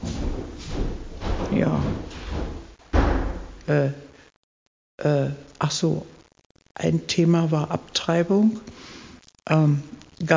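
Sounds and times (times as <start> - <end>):
door closing behind people leaving through a stairwell: 0.0 - 3.6
speech: 1.6 - 2.0, 3.7 - 4.0, 5.0 - 6.2, 6.8 - 10.3.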